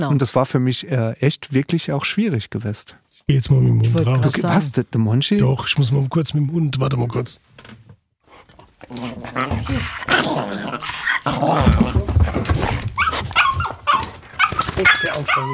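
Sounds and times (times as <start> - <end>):
speech: 0.0 - 7.8, 8.4 - 12.8, 14.8 - 15.5
dog growling: 8.5 - 15.5
dog barking: 13.0 - 15.5.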